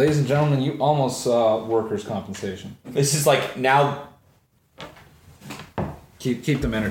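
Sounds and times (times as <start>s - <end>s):
speech: 0.0s - 4.1s, 6.2s - 6.8s
wooden knocks and scrapes of a broken chair side hit back into place: 4.8s - 6.8s.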